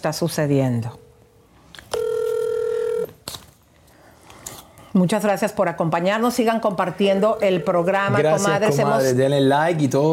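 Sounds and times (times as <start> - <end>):
speech: 0.0 - 1.0, 5.0 - 10.1
telephone tone as a call is placed: 1.9 - 3.2, 7.1 - 8.6.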